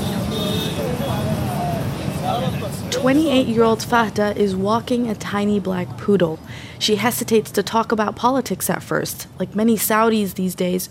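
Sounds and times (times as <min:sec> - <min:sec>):
indistinct murmur of voices from strolling families: 0:00.0 - 0:07.3
dense street traffic along the Corniche Red Sea waterfront in Jeddah Saudi Arabia: 0:00.0 - 0:10.9
speech: 0:03.0 - 0:10.9.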